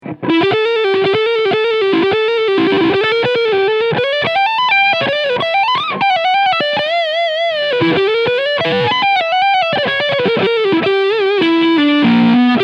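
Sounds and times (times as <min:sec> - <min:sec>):
Ibanez RGT1221PB electric guitar lead on front pickup: 0:00.0 - 0:12.6.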